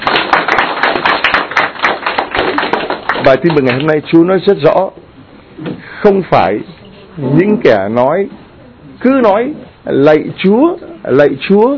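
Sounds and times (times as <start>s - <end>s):
crowd applauding: 0.0s - 3.9s
speech: 3.2s - 5.0s, 6.0s - 8.4s, 9.0s - 11.7s.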